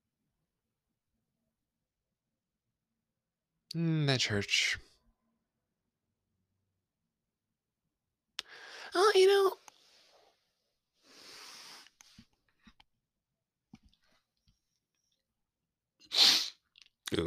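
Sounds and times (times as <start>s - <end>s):
speech: 3.7s - 4.9s, 9.0s - 9.6s
stifled almost-sneeze: 16.1s - 16.6s.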